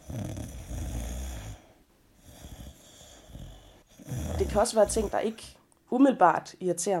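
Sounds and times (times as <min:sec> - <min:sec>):
person snoring loudly: 0:00.0 - 0:05.5
speech: 0:04.5 - 0:06.9.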